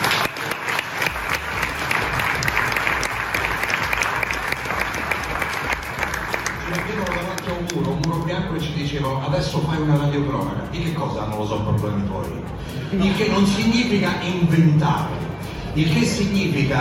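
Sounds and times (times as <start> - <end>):
sustained applause from a large audience: 0.0 - 8.2
speech: 9.0 - 16.8.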